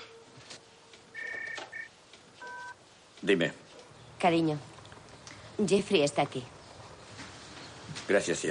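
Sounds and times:
touch-tone telephone key beeps while dialling a call: 1.2s - 1.9s, 2.4s - 2.7s
speech: 3.2s - 3.6s, 4.2s - 4.7s, 5.6s - 6.6s, 8.1s - 8.4s.

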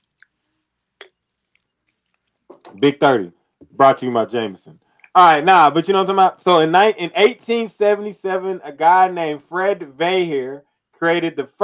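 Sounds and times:
person sipping a drink: 1.0s - 2.8s
mouth clicks: 1.0s - 3.8s, 4.7s - 5.2s
speech: 2.7s - 11.6s.

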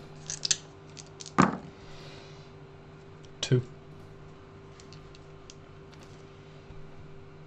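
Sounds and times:
handful of dice being shaken: 0.2s - 1.4s
dice tossed down clattering: 0.2s - 1.6s
speech: 3.5s - 3.8s.

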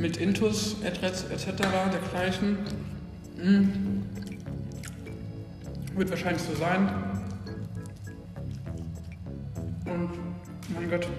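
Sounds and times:
speech: 0.0s - 4.2s, 6.0s - 7.2s, 9.9s - 11.1s
wet chewing and squelching of bread with horseradish: 1.6s - 10.8s
soft mouth clicks and smacks: 2.6s - 9.8s.

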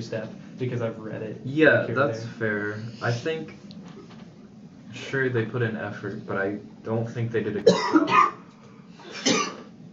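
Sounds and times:
speech: 0.0s - 3.8s, 4.9s - 8.3s
cough away from the microphone: 7.6s - 8.4s, 9.1s - 9.7s.

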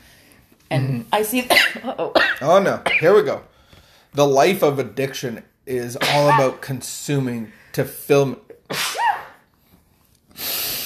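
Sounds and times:
speech: 0.7s - 3.5s, 4.1s - 8.8s
person sneezing: 6.0s - 6.6s, 8.7s - 9.5s
breathy exhale or sniffing: 10.3s - 10.8s.

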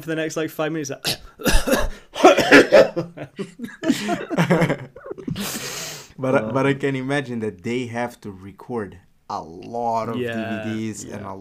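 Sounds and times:
speech: 0.0s - 11.4s
voice imitating a coughing fit: 1.0s - 4.4s
laughter: 1.5s - 5.6s.

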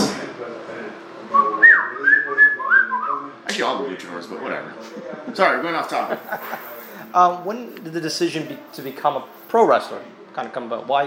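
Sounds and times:
person whistling a shrill melodic phrase: 1.4s - 3.3s
speech: 3.6s - 11.0s
laughter: 4.5s - 7.1s.

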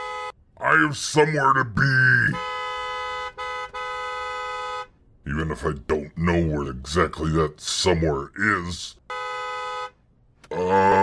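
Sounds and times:
vehicle horn honking: 0.0s - 0.4s, 2.4s - 5.0s, 9.1s - 10.0s
speech: 0.7s - 2.6s, 5.3s - 9.0s.

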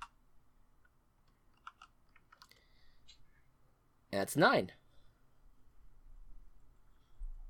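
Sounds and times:
typing on a computer keyboard: 1.5s - 2.6s
speech: 4.2s - 4.8s.

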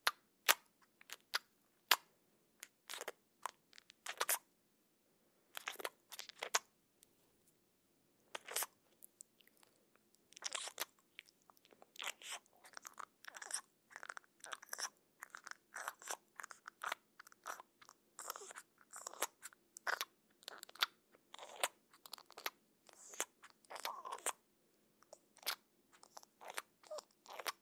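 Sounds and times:
moist squishing and smacking cheek sounds: 0.0s - 4.5s, 5.5s - 7.1s, 8.3s - 24.4s, 25.0s - 27.6s.

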